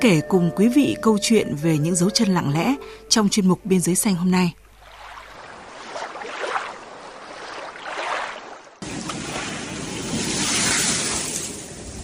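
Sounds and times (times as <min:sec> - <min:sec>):
speech: 0:00.0 - 0:04.6
river water flowing: 0:04.6 - 0:10.2.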